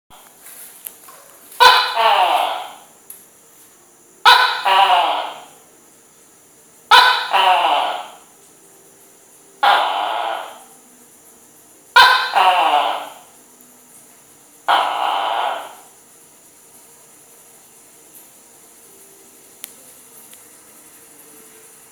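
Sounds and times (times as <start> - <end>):
lizard voice: 1.6 - 2.9, 4.2 - 5.6, 6.9 - 8.3, 9.6 - 10.7, 12.0 - 13.3, 14.7 - 16.0.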